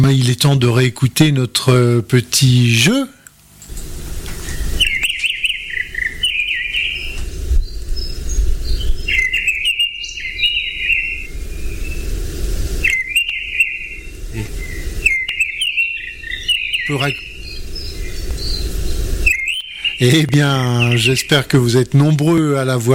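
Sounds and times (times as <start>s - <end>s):
speech: 0.0s - 3.8s, 16.9s - 17.3s, 20.0s - 22.9s
redwing thrush singing: 0.0s - 22.9s
steady low hum of outdoor ambience: 0.0s - 22.9s
faint insect-like buzzing: 2.3s - 22.1s.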